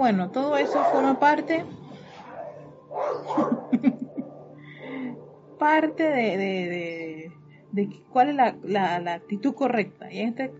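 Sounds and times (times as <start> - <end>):
speech: 0.0 - 1.8, 3.1 - 3.6, 5.6 - 10.5
low steady hum: 0.0 - 10.5
two female dogs barking in short sharp yips: 0.4 - 6.2
laughter: 3.3 - 5.1.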